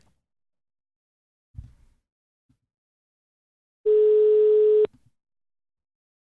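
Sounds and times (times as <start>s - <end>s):
ringback tone of an outgoing telephone call: 3.9s - 4.9s.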